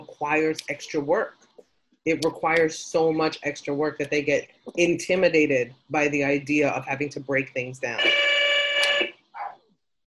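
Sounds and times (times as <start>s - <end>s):
speech: 0.2s - 8.2s
harsh electric door buzzer: 8.0s - 9.1s.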